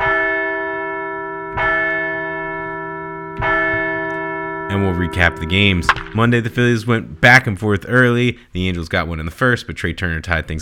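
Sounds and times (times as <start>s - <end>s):
large victory bell ringing: 0.0s - 7.6s
speech: 4.8s - 10.6s.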